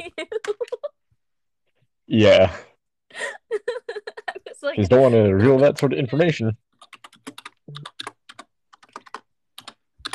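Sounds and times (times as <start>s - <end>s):
speech: 2.1s - 2.7s, 4.7s - 6.6s
computer keyboard typing: 6.7s - 10.1s.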